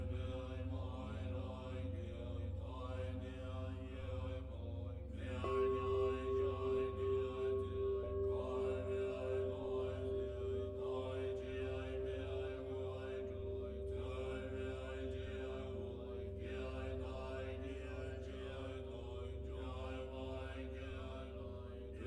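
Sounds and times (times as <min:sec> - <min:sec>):
low Buddhist chanting: 0:00.0 - 0:22.0
sustained ringing tones: 0:00.0 - 0:22.0
singing bell note with a slow wavering pulse: 0:05.2 - 0:22.0.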